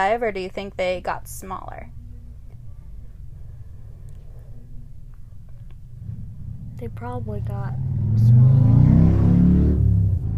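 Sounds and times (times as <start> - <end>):
speech: 0.0 - 2.0, 6.8 - 8.6
motorcycle engine revving: 5.9 - 10.3.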